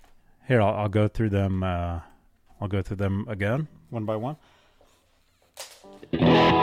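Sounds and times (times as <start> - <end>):
speech: 0.5 - 4.6
electric guitar through reverb and delay pedal: 5.8 - 6.6.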